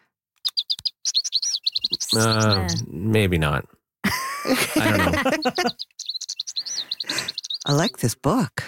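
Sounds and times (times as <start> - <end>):
yellow-rumped warbler singing a rapid trill: 0.4 - 3.1, 4.6 - 8.2
speech: 1.9 - 3.8, 4.5 - 6.0, 7.7 - 8.6
laughter: 4.0 - 5.8.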